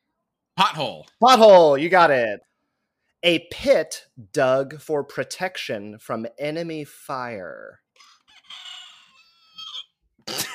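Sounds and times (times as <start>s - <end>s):
speech: 0.6s - 2.5s, 3.2s - 7.8s
battery-powered toy rooster crowing as its battery runs out: 8.2s - 9.9s.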